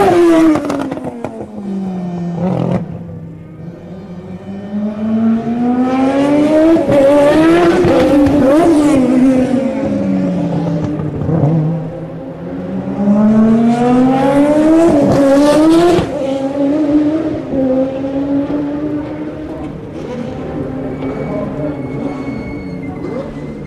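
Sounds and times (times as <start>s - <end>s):
race car engine revving: 0.0s - 23.6s.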